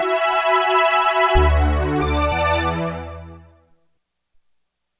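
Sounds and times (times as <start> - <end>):
synthesizer high strings: 0.1 - 3.5.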